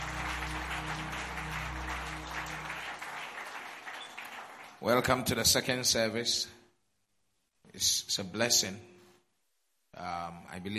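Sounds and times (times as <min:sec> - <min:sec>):
audience clapping: 0:00.0 - 0:05.4
speech: 0:04.8 - 0:06.6, 0:07.8 - 0:08.9, 0:10.0 - 0:10.7.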